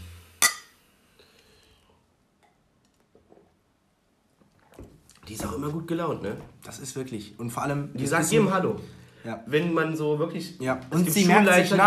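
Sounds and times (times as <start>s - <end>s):
glasses clinking in a toast: 0.4s - 0.7s
speech: 5.3s - 11.8s.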